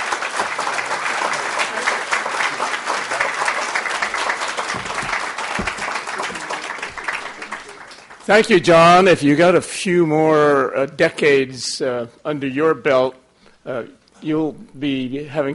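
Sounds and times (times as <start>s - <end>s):
large audience applauding as a senator is welcomed to the stage: 0.0s - 8.7s
speech: 8.3s - 15.5s.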